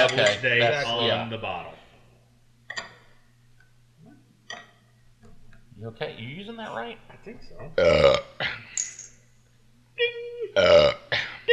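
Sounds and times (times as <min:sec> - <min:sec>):
speech: 0:00.0 - 0:01.8, 0:05.8 - 0:08.8, 0:10.0 - 0:11.5
short throaty burps: 0:07.8 - 0:08.7, 0:10.6 - 0:11.5.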